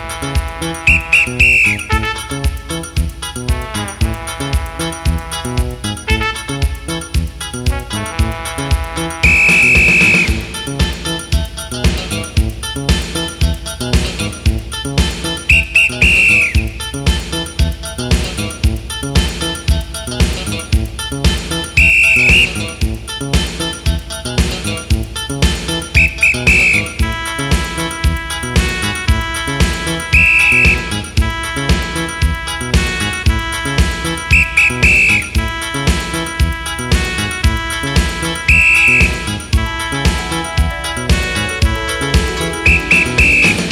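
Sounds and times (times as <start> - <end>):
steady music: 0.0 - 43.7
shrill whistle blasts in short rhythmic patterns: 0.9 - 2.2, 9.2 - 10.5, 15.5 - 16.9, 21.8 - 22.8, 26.0 - 27.1, 30.1 - 31.1, 34.3 - 35.5, 38.5 - 39.4, 42.6 - 43.7.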